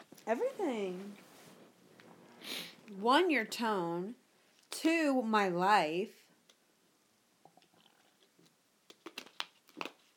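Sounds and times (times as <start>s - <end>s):
speech: 0.3s - 1.3s, 2.9s - 6.2s
person gulping and swallowing loudly while drinking: 7.4s - 8.6s
soft mouth noises: 7.4s - 9.9s.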